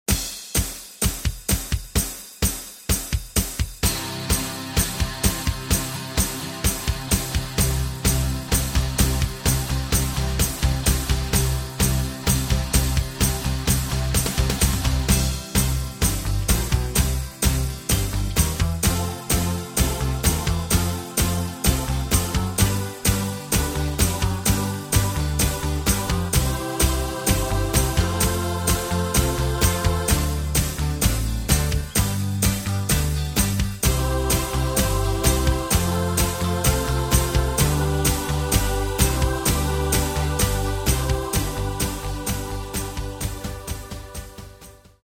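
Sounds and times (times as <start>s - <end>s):
backing track music in C: 0.1s - 45.0s.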